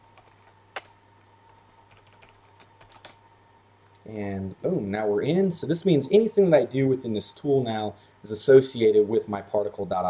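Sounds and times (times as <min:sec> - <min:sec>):
computer keyboard typing: 0:00.0 - 0:03.2
faint steady hum: 0:00.0 - 0:10.0
speech: 0:04.1 - 0:10.0.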